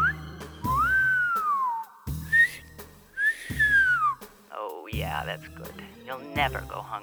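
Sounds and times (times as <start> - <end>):
person whistling a lure whistle: 0.0 - 4.3
low thuds: 0.0 - 5.8
speech: 5.2 - 7.0.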